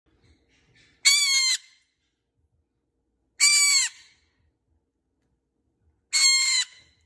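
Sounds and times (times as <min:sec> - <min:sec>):
green-cheeked parakeet calling: 0:00.7 - 0:01.8, 0:03.4 - 0:04.2, 0:06.1 - 0:07.0.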